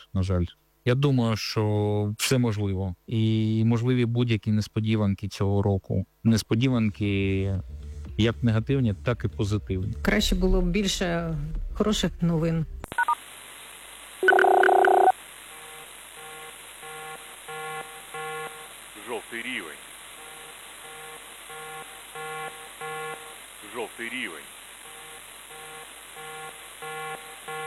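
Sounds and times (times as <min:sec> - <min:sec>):
speech: 0:00.1 - 0:13.0
loud electronic alert tone: 0:14.2 - 0:15.1.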